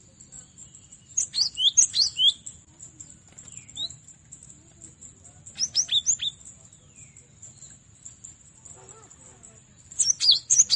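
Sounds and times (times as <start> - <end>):
cinereous tit singing: 0.4 - 2.6, 5.5 - 6.4, 9.8 - 10.7.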